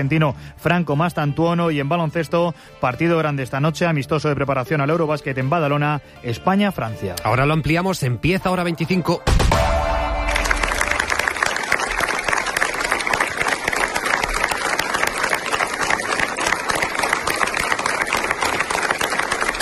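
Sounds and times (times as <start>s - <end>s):
speech: 0.0s - 9.7s
large crowd applauding at a funeral in León Spain: 10.0s - 19.6s.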